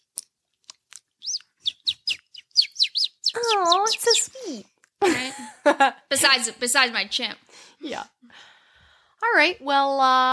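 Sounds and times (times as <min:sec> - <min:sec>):
person imitating baby bird chirps: 0:01.2 - 0:04.6
speech: 0:03.4 - 0:04.7, 0:05.3 - 0:08.5, 0:09.2 - 0:10.3.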